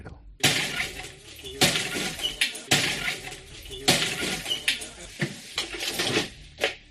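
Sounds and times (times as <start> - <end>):
window glass of a tourist apartment in central Madrid being smashed: 0.4 - 6.6
glass shards tinkling: 0.7 - 6.2.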